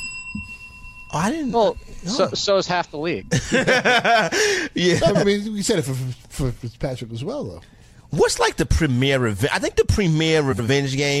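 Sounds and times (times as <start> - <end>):
bell ringing with a bright steady tone: 0.0 - 4.4
speech: 1.1 - 11.1
laughter: 3.3 - 5.4
person talking loudly: 4.8 - 5.3.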